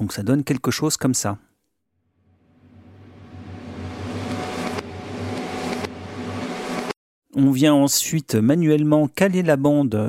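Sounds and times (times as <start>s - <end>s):
speech: 0.0s - 1.5s, 7.4s - 10.0s
reversed reverb swell with sucking inhaling effect: 2.2s - 7.0s
smeared backward hits: 2.3s - 7.0s.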